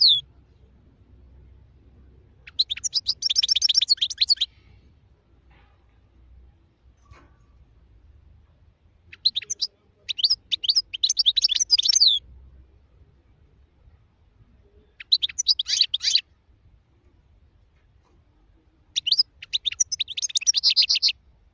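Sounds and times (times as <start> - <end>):
wild European goldfinch song: 0.0 - 0.2, 2.4 - 4.6, 9.1 - 12.2, 15.0 - 16.2, 19.0 - 21.2.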